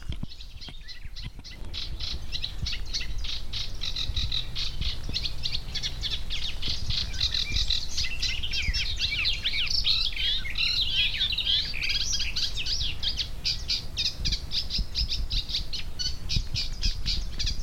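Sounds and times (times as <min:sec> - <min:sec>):
small songbird, perhaps reed warbler or wren, chattering song: 0:00.0 - 0:17.6.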